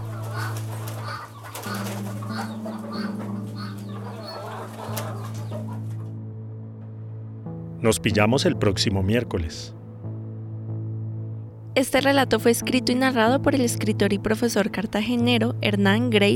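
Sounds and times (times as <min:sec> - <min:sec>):
flock of chickens clucking and squawking: 0:00.0 - 0:06.2
speech: 0:07.8 - 0:09.8, 0:11.8 - 0:16.3.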